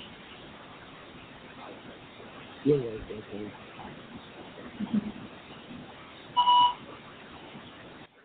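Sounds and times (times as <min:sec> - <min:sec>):
speech: 0:02.7 - 0:04.2
short mid-pitched electronic beep: 0:06.4 - 0:06.8.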